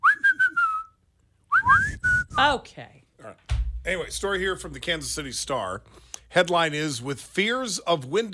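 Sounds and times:
loud rising human whistles: 0:00.0 - 0:02.4
speech: 0:02.4 - 0:08.3.

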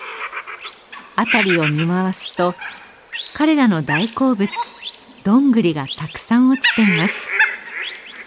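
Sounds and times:
Mandarin duck giving a short wavering harmonic call at Takagawa Dam, Kagoshima Prefecture, Japan: 0:00.0 - 0:04.9, 0:06.5 - 0:08.2
speech: 0:01.2 - 0:07.3.

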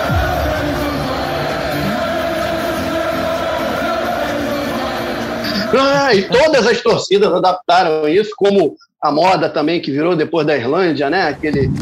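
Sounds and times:
roaring stadium background: 0:00.0 - 0:06.0
huge stadium crowd of football fans singing a chant: 0:00.0 - 0:06.4
speech: 0:05.7 - 0:11.7.

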